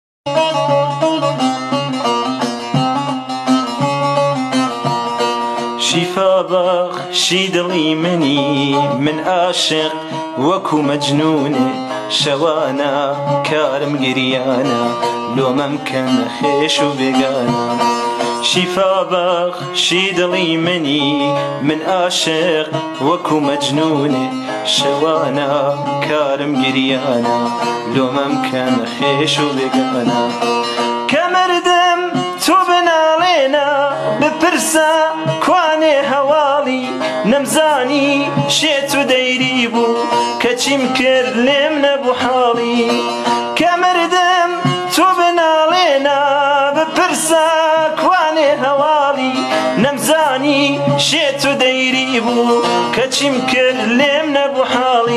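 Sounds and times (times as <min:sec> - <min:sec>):
Kurdish music on guitar: 0:00.3 - 0:55.1.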